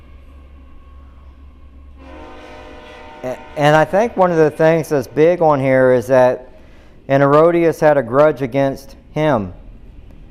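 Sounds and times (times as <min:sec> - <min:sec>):
train rumbling past: 0:00.0 - 0:10.2
train horn blaring: 0:02.0 - 0:06.8
speech: 0:03.2 - 0:06.5, 0:07.1 - 0:09.6.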